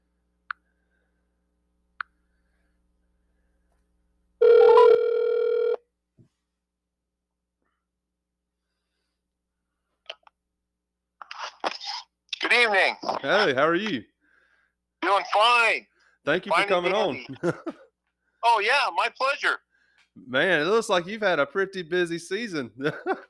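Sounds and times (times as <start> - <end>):
phone ringing with an electronic burst: 4.4 - 5.8
speech: 12.6 - 14.1, 15.0 - 17.8, 18.4 - 19.6, 20.2 - 23.2
laughter: 16.7 - 17.9, 22.8 - 23.2.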